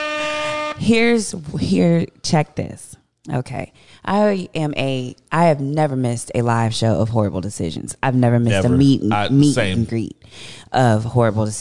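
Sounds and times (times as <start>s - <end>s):
loud steady air horn blast: 0.0s - 1.3s
speech: 0.8s - 11.5s.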